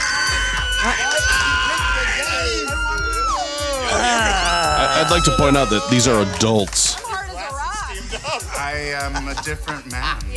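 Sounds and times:
woman screaming loudly: 0.0s - 6.3s
noisy excited crowd with voices shouting: 0.0s - 8.0s
laughter: 0.0s - 10.3s
speech: 0.8s - 1.1s, 5.0s - 7.0s, 8.6s - 10.3s.

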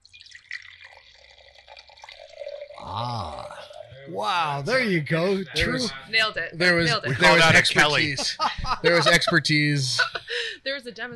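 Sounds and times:
Chenin Blanc wine pouring into a glass: 0.0s - 4.1s
speech: 2.9s - 11.1s
laughter: 6.8s - 10.5s.

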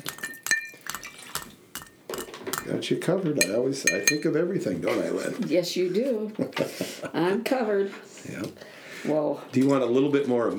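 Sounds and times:
stir stick clinking against a glass stirring a vodka cocktail: 0.0s - 2.8s, 3.4s - 4.4s
speech: 2.7s - 10.5s.

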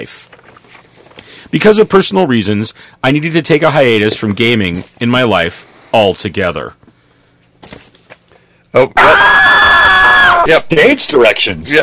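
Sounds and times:
speech: 0.0s - 0.4s, 1.5s - 6.8s, 8.7s - 9.4s, 10.4s - 11.8s
woman's scream sound effect from a soundboard: 9.0s - 10.5s.

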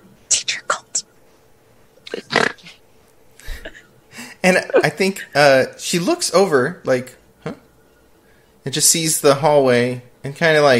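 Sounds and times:
whispered bursts: 0.3s - 1.1s
person imitating hissing: 2.1s - 2.8s
speech: 4.5s - 7.6s, 8.7s - 10.7s.

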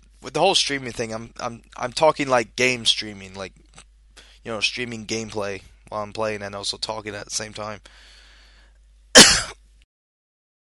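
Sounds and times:
speech: 0.2s - 3.6s, 4.4s - 8.1s
harsh cough: 9.2s - 9.6s.

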